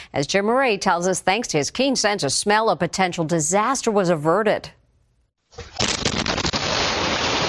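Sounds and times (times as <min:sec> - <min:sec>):
speech: 0:00.1 - 0:04.8
house gas explosion: 0:05.7 - 0:07.4.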